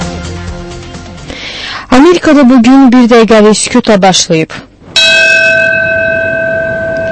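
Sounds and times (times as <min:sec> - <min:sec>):
speech: 0:02.0 - 0:04.7
large bell tolling at a September 11 memorial in America: 0:05.0 - 0:07.0.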